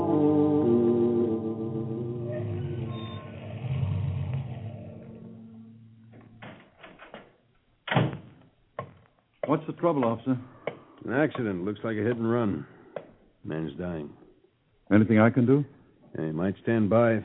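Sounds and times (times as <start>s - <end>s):
car engine droning as the car drives on: 0.1s - 6.4s
speech: 9.5s - 12.7s, 13.5s - 14.2s, 14.9s - 17.2s.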